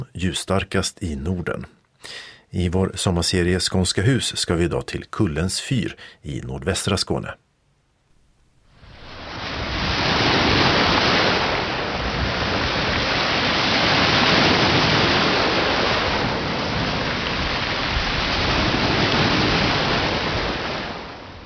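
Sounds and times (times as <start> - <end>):
speech: 0.1 - 7.4
waves crashing against a rocky shore: 8.8 - 21.4.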